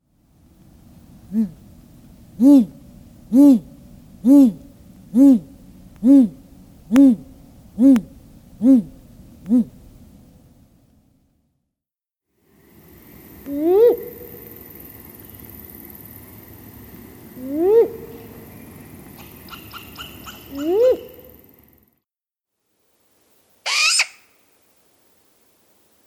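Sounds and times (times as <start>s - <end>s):
great grey owl hooting: 2.4s - 9.8s, 12.8s - 16.0s, 17.3s - 21.8s, 23.6s - 24.4s.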